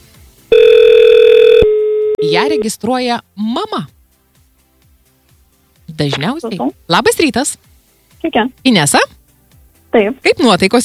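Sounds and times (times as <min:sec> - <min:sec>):
steady electronic telephone line tone while a call is placed: 0:00.5 - 0:02.7
speech: 0:02.2 - 0:04.0, 0:06.0 - 0:09.2, 0:10.0 - 0:10.8.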